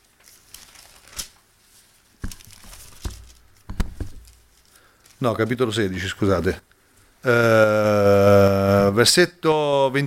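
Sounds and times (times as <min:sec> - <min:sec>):
book pages turning with paper rustling: 0:00.0 - 0:05.3
speech: 0:05.2 - 0:08.4, 0:09.0 - 0:10.0.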